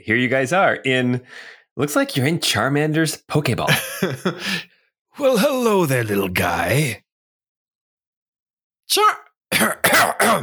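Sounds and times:
speech: 0:00.0 - 0:07.0, 0:08.9 - 0:10.4
laughter: 0:03.7 - 0:04.6
throaty coughing to clear something caught in the throat: 0:09.5 - 0:10.4.

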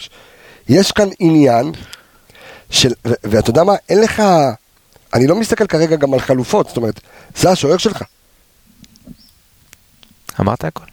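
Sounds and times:
speech: 0:00.0 - 0:01.9, 0:02.7 - 0:08.2, 0:10.4 - 0:10.9
birds chirping: 0:09.2 - 0:10.4.

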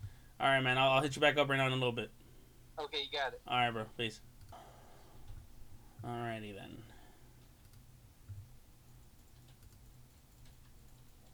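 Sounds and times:
low steady hum: 0:00.0 - 0:11.3
speech: 0:00.4 - 0:02.2, 0:02.8 - 0:04.3, 0:06.0 - 0:06.9
computer mouse clicking: 0:07.4 - 0:08.5, 0:09.2 - 0:11.3.

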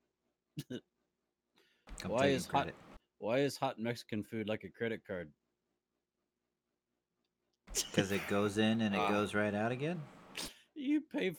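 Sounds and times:
speech: 0:00.6 - 0:01.0, 0:02.0 - 0:05.4, 0:07.7 - 0:11.3
person coughing harshly after laughing: 0:07.7 - 0:09.3.

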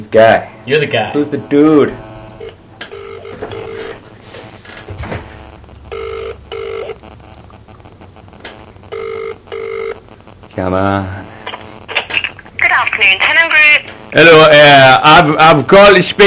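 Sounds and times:
speech: 0:00.1 - 0:02.0, 0:10.6 - 0:11.2, 0:13.0 - 0:16.2
phone line double-burst ringback tone on an outgoing prank call: 0:01.3 - 0:07.0, 0:08.9 - 0:10.0
brief thump: 0:04.9 - 0:05.4.

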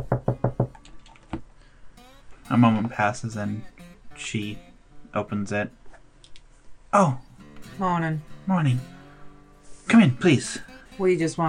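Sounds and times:
firm knocking on a door: 0:00.0 - 0:00.8
speech: 0:02.5 - 0:05.8, 0:06.9 - 0:09.0, 0:09.9 - 0:11.4.

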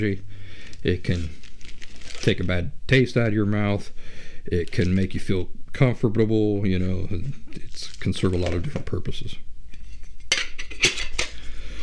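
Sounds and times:
speech: 0:00.0 - 0:01.4, 0:02.2 - 0:09.5
metal cook pot from a survival kit clanking and rattling: 0:10.2 - 0:11.8.

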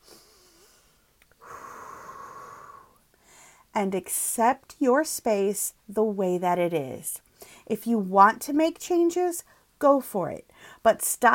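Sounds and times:
long deep inhale with a slightly whistly tone: 0:00.0 - 0:03.7
speech: 0:03.8 - 0:11.3.

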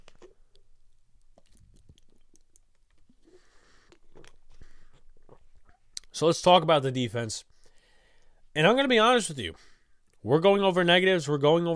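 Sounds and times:
quiet wet mouth clicks: 0:00.0 - 0:06.1
person sipping a drink: 0:01.3 - 0:06.0
speech: 0:06.2 - 0:07.5, 0:08.6 - 0:11.7.

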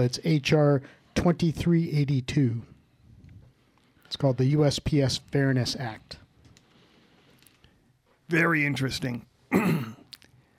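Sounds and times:
speech: 0:00.0 - 0:02.7, 0:04.1 - 0:06.2, 0:08.3 - 0:09.9
person coughing: 0:09.5 - 0:10.1.

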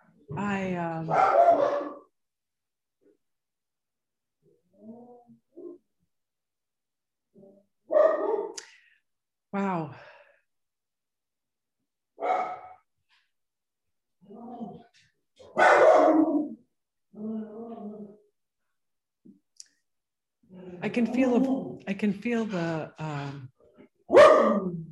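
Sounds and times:
speech: 0:00.3 - 0:01.8, 0:09.5 - 0:10.1, 0:20.7 - 0:23.5, 0:24.1 - 0:24.8
dog barking: 0:01.1 - 0:02.1, 0:07.9 - 0:08.6, 0:12.2 - 0:12.8, 0:15.4 - 0:16.6, 0:24.1 - 0:24.8.

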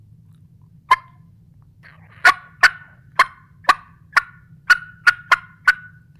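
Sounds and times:
faint low hum: 0:00.0 - 0:06.1
excited wild turkey clucks made on a call: 0:00.9 - 0:01.2, 0:01.8 - 0:06.1.

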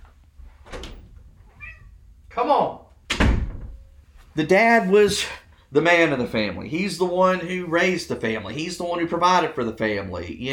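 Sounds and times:
cat meowing: 0:01.5 - 0:02.0
speech: 0:02.4 - 0:02.8, 0:04.4 - 0:10.5.

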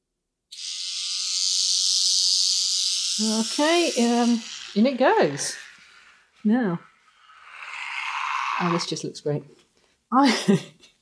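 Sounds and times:
electric toothbrush buzzing in wet concrete: 0:00.5 - 0:08.9
speech: 0:03.2 - 0:05.6, 0:06.4 - 0:06.9, 0:08.6 - 0:10.7.

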